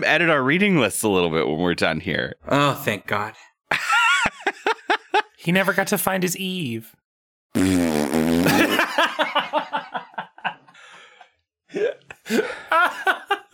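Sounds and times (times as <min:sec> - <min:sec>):
speech: 0:00.0 - 0:04.0, 0:05.4 - 0:07.0, 0:07.6 - 0:10.3, 0:11.7 - 0:13.5
rapid choppy laughter and snickering: 0:03.7 - 0:05.4, 0:08.4 - 0:11.2, 0:11.8 - 0:13.5
loud buzzy fart noise blown with the mouth: 0:07.6 - 0:08.8.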